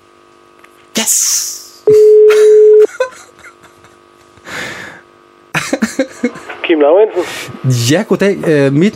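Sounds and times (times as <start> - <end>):
speech: 1.0 - 1.5, 6.2 - 8.9
steady electronic telephone dialing tone during call transfer: 1.9 - 2.9.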